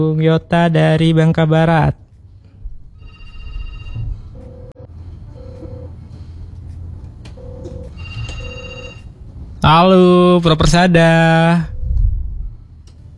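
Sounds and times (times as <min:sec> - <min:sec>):
speech: 0:00.0 - 0:02.0, 0:09.6 - 0:11.7
telephone ringback tone beeps: 0:03.0 - 0:04.7, 0:05.4 - 0:06.0, 0:07.4 - 0:09.1.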